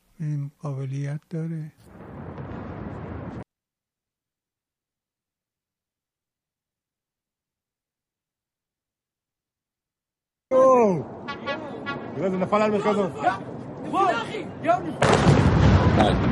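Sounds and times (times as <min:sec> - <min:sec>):
speech: 0:00.2 - 0:01.9, 0:12.5 - 0:16.3
voices shouting excitedly: 0:10.5 - 0:15.0
missiles launching with a deep rumbling roar: 0:15.0 - 0:16.3.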